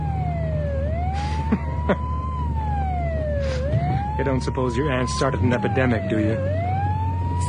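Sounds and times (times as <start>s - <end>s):
ambulance siren wailing as it passes: 0.0s - 7.4s
low traffic rumble: 0.0s - 7.4s
speech: 1.5s - 2.1s, 4.2s - 6.6s.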